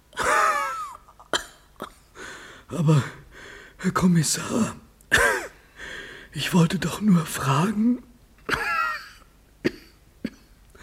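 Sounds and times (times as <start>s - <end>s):
person coughing: 0.2s - 2.1s, 5.1s - 5.6s, 8.5s - 10.6s
speech: 2.7s - 3.2s, 3.8s - 4.8s, 6.3s - 8.1s.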